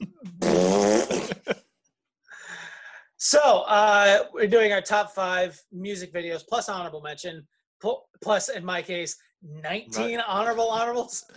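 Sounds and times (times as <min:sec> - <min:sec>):
loud buzzy fart sound effect: 0:00.0 - 0:01.6
speech: 0:03.3 - 0:11.3.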